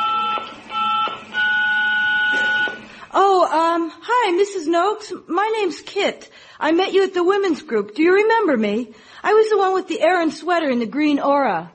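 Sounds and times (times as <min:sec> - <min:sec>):
electronic answering machine beeps: 0:00.0 - 0:03.0
speech: 0:04.3 - 0:11.7.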